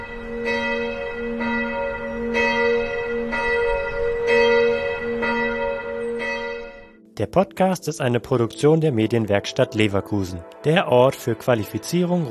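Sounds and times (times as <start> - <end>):
church bell tolling for the Angelus: 0.0 - 7.2
speech: 7.2 - 12.2.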